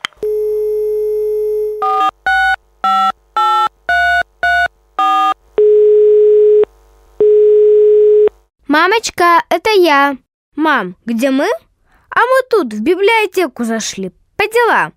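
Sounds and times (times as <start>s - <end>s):
long steady telephone tones: 0.2s - 8.4s
speech: 8.8s - 11.6s, 12.2s - 14.9s.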